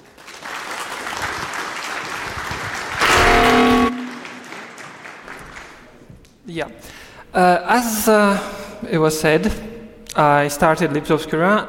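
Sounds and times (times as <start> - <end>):
audience applause: 0.0 - 6.0
speech: 6.5 - 11.6.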